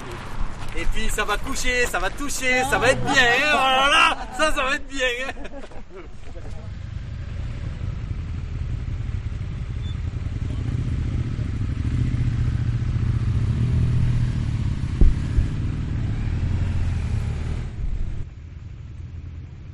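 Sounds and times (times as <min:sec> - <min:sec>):
speech: 0:00.8 - 0:06.2
laughter: 0:01.3 - 0:06.6
motorcycle engine drone while riding: 0:06.0 - 0:19.7
wind rushing during motorcycle ride: 0:13.8 - 0:16.7.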